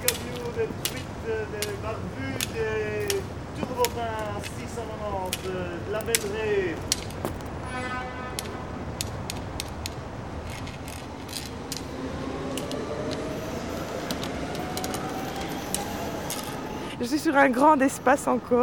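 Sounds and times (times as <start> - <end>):
speech: 0.0 - 3.0, 3.8 - 8.2, 17.0 - 18.6
metro train rumbling underneath: 0.0 - 5.2, 5.8 - 18.6
sharp metallic clicks of metro train: 0.0 - 7.5, 8.4 - 16.7
faint rising whine of moving metro train: 10.1 - 18.6.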